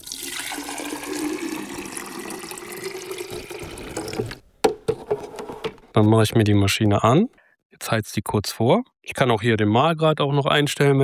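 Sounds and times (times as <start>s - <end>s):
water pouring into coffee machine tank: 0.0s - 4.4s
speech: 6.0s - 11.0s.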